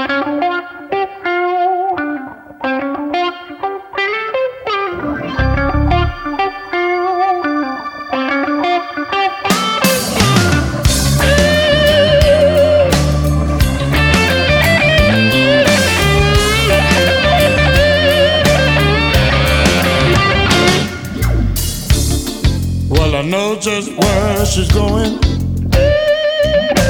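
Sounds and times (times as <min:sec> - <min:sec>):
effect-laden electric guitar playing bending melodic lines: 0:00.0 - 0:26.8
blues band with drums and bass: 0:04.8 - 0:07.6, 0:08.2 - 0:26.8.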